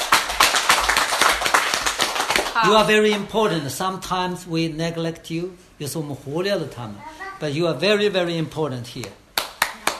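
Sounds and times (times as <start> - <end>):
audience hand clapping in a steady rhythm: 0.0 - 3.5, 9.0 - 9.9
speech: 2.6 - 9.2.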